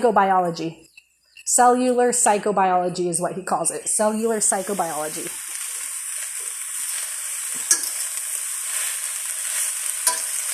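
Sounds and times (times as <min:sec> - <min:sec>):
speech: 0:00.0 - 0:05.4
kale cooking in a pan sizzling and crackling: 0:03.9 - 0:10.5.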